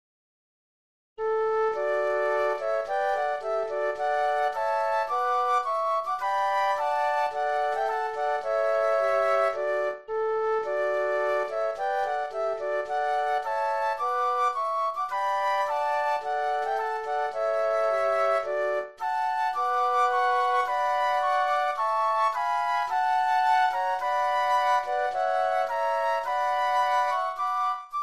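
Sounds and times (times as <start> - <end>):
flute trio playing a patriotic tune: 1.3 - 28.0.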